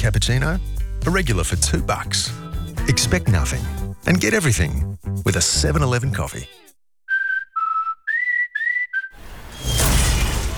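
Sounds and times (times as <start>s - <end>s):
speech: 0.0s - 6.6s
short clear whistle notes: 7.1s - 10.1s
space capsule crashing through a roof and carport: 9.2s - 10.5s
noisy shattering debris: 9.3s - 10.5s.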